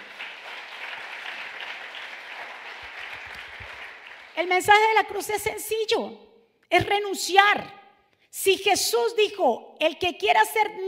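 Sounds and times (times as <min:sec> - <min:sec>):
dense sustained crowd applause: 0:00.0 - 0:04.4
speech: 0:04.4 - 0:07.8, 0:08.4 - 0:10.8.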